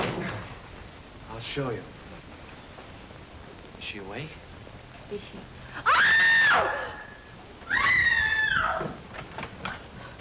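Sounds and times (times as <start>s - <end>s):
speech: 1.4s - 2.0s, 3.8s - 4.4s, 5.1s - 6.8s
woman screaming: 5.8s - 8.9s.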